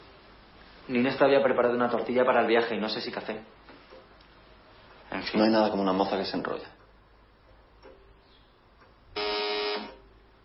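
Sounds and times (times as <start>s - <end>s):
speech: 0.9s - 3.6s, 5.2s - 6.8s
doorbell buzzing: 9.2s - 10.1s.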